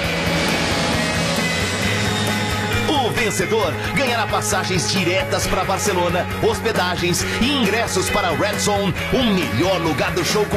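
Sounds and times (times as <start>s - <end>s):
airplane flying past as a radio sound effect: 0.0s - 4.0s
speech: 3.2s - 10.5s.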